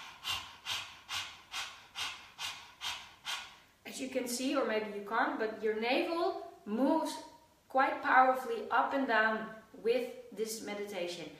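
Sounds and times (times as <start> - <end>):
rapid panting through an open mouth: 0.0 - 3.8
speech: 4.0 - 11.3.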